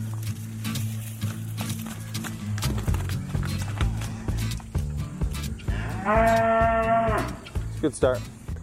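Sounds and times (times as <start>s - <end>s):
hoof clatter and thumps: 0.0s - 7.7s
cattle lowing and mooing in a barn: 5.6s - 7.5s
speech: 6.1s - 6.6s, 7.8s - 8.3s.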